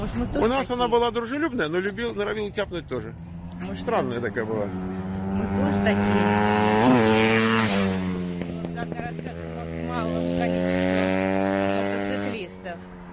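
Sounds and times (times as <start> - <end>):
speech: 0.0 - 7.3, 8.8 - 11.0
motorcycles without mufflers roaring past: 2.8 - 13.1.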